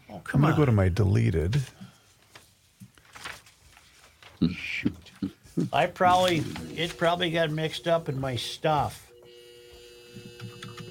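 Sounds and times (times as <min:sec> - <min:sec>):
speech: 0:00.1 - 0:01.8, 0:04.4 - 0:09.0
clothes dryer steady electric buzz: 0:06.4 - 0:10.9.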